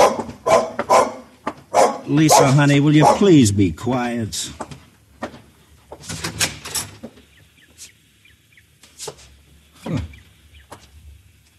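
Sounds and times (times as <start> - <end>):
dog barking: 0.0 - 3.4
speech: 2.1 - 4.6.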